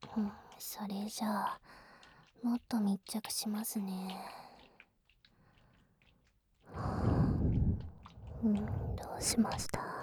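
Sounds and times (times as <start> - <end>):
speech: 0.2 - 1.8, 2.4 - 4.5, 8.4 - 9.9
soft mouth clicks: 6.7 - 10.0.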